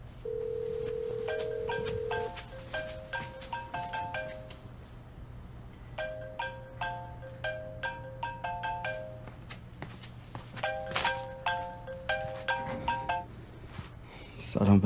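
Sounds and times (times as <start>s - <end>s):
mobile phone ringtone: 0.2s - 4.6s, 6.0s - 9.3s, 10.6s - 13.3s.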